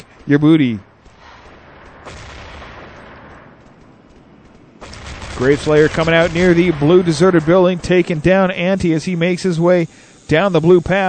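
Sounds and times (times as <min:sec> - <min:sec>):
speech: 0:00.3 - 0:00.9, 0:05.4 - 0:11.0
submachine gun firing in a video game: 0:00.9 - 0:08.8.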